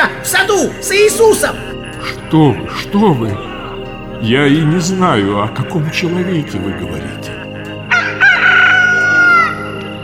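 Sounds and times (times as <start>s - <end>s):
speech: 0.0s - 3.5s, 4.2s - 7.4s
rooster crowing: 7.9s - 9.8s.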